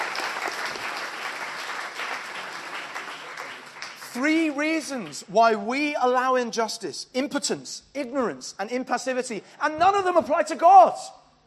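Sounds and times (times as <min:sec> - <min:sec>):
audience applause: 0:00.0 - 0:04.2
speech: 0:04.2 - 0:11.2.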